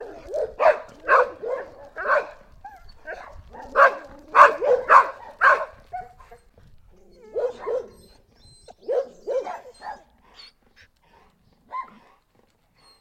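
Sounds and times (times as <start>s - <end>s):
dog barking: 0.0s - 2.4s, 3.0s - 6.4s, 7.2s - 8.1s, 8.8s - 10.1s.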